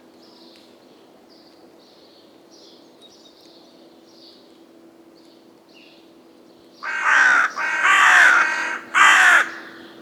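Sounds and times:
Carrion crow cawing, Corvus corone: 0:06.8 - 0:10.0.

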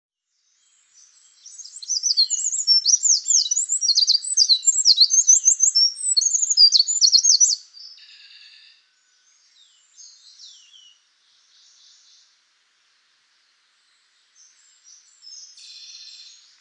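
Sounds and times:
Eurasian wren song with sharp trills and chattering notes: 0:00.2 - 0:12.4, 0:13.3 - 0:16.5.

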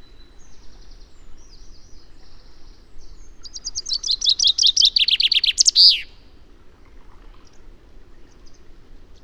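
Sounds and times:
common chaffinch Fringilla coelebs singing: 0:03.4 - 0:06.2.

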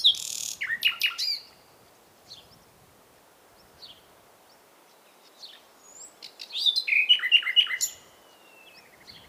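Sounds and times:
Common nightingale Luscinia megarhynchos singing: 0:00.0 - 0:02.8, 0:03.5 - 0:09.2.

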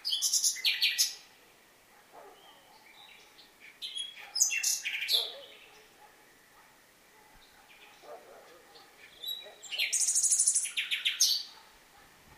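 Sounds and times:
common nightingale Luscinia megarhynchos singing: 0:00.0 - 0:01.3, 0:02.3 - 0:06.5, 0:07.4 - 0:11.6.

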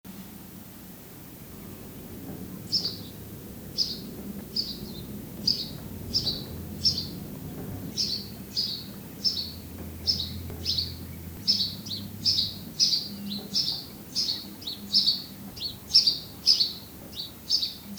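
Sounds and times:
low hum: 0:00.6 - 0:16.4
house sparrow Passer domesticus chirping: 0:01.5 - 0:17.9.

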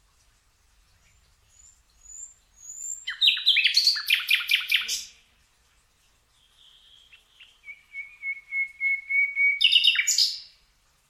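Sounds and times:
Luscinia megarhynchos singing: 0:01.5 - 0:05.2, 0:06.4 - 0:10.6.

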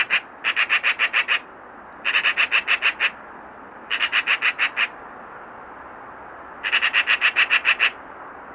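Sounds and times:
Eurasian magpie Pica pica chattering in harsh rattling bursts: 0:00.0 - 0:01.4, 0:02.1 - 0:03.2, 0:03.9 - 0:04.9, 0:06.6 - 0:08.0.

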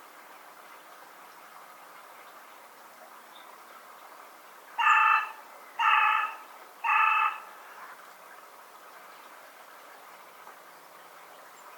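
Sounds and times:
carrion crow Corvus corone cawing: 0:04.8 - 0:07.6.

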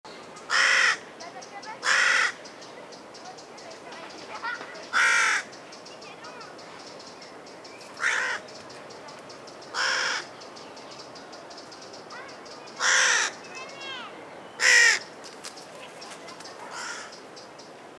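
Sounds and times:
carrion crow Corvus corone giving harsh hoarse caws: 0:00.5 - 0:01.1, 0:01.8 - 0:02.4, 0:04.9 - 0:05.6, 0:08.0 - 0:08.4, 0:09.7 - 0:10.3, 0:12.8 - 0:13.4, 0:14.6 - 0:15.1, 0:16.7 - 0:17.2.

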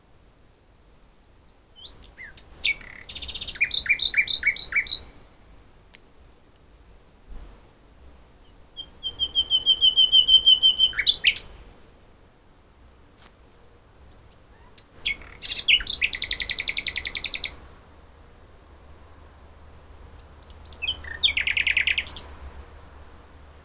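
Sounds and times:
common nightingale Luscinia megarhynchos singing: 0:01.2 - 0:05.5, 0:08.4 - 0:11.6, 0:14.2 - 0:17.6, 0:20.1 - 0:22.4.

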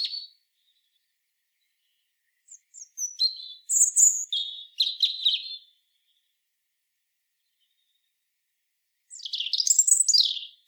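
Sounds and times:
European robin Erithacus rubecula song: 0:00.0 - 0:06.4, 0:09.1 - 0:10.6.

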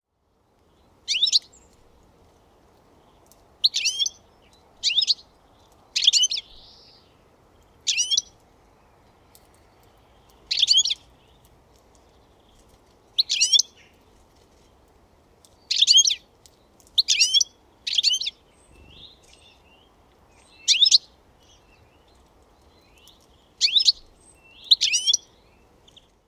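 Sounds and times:
low background hiss: 0:00.0 - 0:26.2
European goldfinch Carduelis carduelis calling with liquid chirping phrases: 0:01.1 - 0:01.8, 0:03.1 - 0:05.3, 0:06.0 - 0:07.2, 0:07.8 - 0:08.4, 0:09.8 - 0:11.4, 0:12.4 - 0:14.0, 0:15.6 - 0:16.2, 0:17.0 - 0:22.1, 0:22.8 - 0:26.1.

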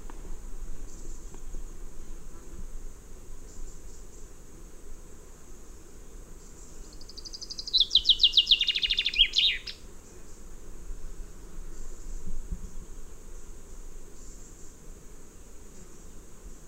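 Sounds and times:
steady high hiss: 0:00.0 - 0:16.6
common chaffinch singing: 0:06.4 - 0:09.8.

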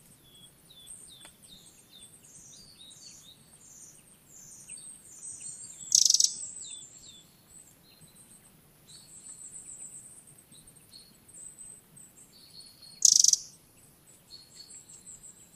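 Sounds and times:
faint high twittering notes: 0:00.2 - 0:15.5
Eurasian wren Troglodytes troglodytes sharp dry tick calls: 0:00.9 - 0:01.5, 0:05.1 - 0:06.5, 0:13.0 - 0:13.6.

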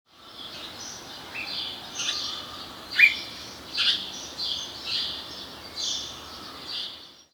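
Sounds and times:
house sparrow Passer domesticus chirping: 0:00.2 - 0:07.2.

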